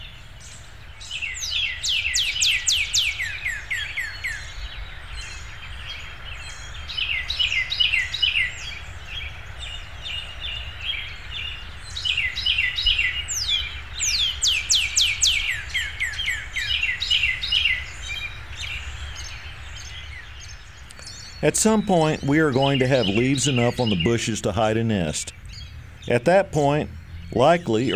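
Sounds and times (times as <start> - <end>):
Carolina wren singing: 0.0 - 27.9
other birds chirping faintly: 0.0 - 27.9
low hum: 19.7 - 27.9
cardinal singing: 21.4 - 25.3, 26.1 - 27.9
speech: 21.4 - 25.4, 26.1 - 27.9.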